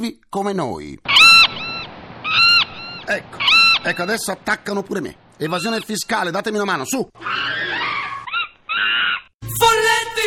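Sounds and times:
speech: 0.0 - 1.2, 3.1 - 7.8
mascot monkeys screeching while chasing away seagulls: 1.1 - 4.8, 5.4 - 6.5, 7.2 - 9.4.

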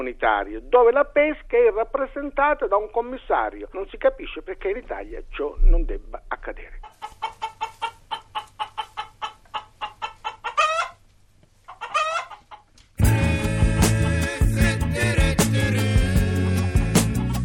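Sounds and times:
speech: 0.0 - 7.1
laying hens clucking and squawking: 6.6 - 12.8
loud music-like sound: 13.0 - 17.4.

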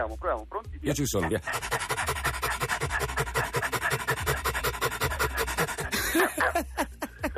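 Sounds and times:
speech: 0.0 - 1.9
person panting like a dog as a breathing exercise: 1.5 - 6.4
laughter: 5.3 - 7.3.

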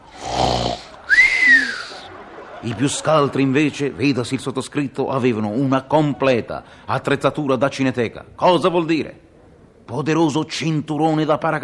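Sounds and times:
voice imitating snoring: 0.1 - 1.0
laughter: 0.8 - 4.9
speech: 2.6 - 9.3, 9.9 - 11.6.

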